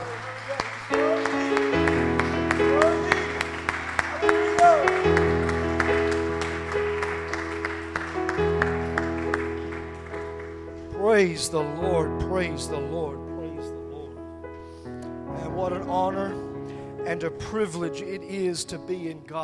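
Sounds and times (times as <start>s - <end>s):
audience clapping in rhythm: 0.0s - 11.2s
sustained organ chords: 0.0s - 19.4s
speech: 11.2s - 13.3s, 15.9s - 16.4s, 17.1s - 19.4s.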